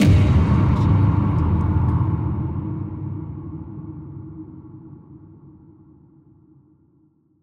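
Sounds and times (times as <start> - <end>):
ghostly trailer hit: 0.0 - 5.9.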